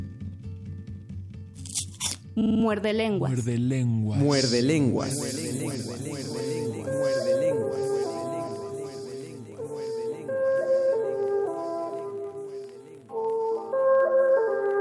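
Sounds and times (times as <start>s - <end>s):
speech: 2.4s - 7.8s
song with chorus: 4.2s - 14.2s
several voices singing together in harmonized lines: 4.2s - 14.7s.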